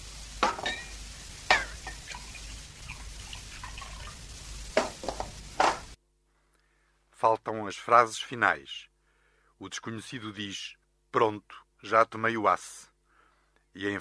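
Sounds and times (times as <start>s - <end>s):
spoon clinking against a glass of water while stirring aspirin: 0.6s - 2.2s
speech: 7.2s - 8.9s, 9.6s - 12.9s, 13.8s - 13.9s.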